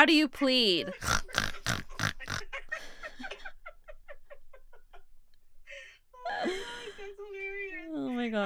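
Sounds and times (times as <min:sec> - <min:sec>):
speech: 0:00.0 - 0:01.8, 0:08.2 - 0:08.4
laughter: 0:00.4 - 0:08.4
person imitating a pig snorting and grunting: 0:00.8 - 0:02.5.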